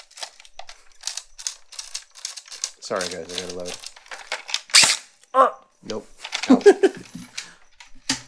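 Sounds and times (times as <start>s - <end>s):
speech: 2.9s - 3.9s, 5.3s - 7.3s
bb gun firing: 4.8s - 5.0s
laughter: 6.4s - 7.5s.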